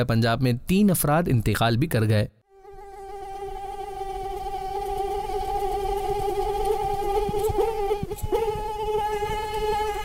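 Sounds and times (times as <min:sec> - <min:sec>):
speech: 0:00.0 - 0:02.4
mosquito whining: 0:02.5 - 0:10.0.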